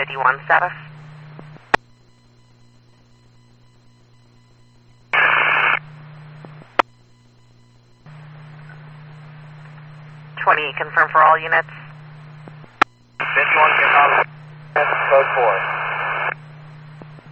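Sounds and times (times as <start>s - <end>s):
speech: 0.0s - 0.9s, 10.5s - 11.8s, 14.8s - 15.8s
radio static: 0.0s - 1.8s, 5.1s - 5.9s, 8.1s - 17.3s
low electrical hum: 0.0s - 17.3s.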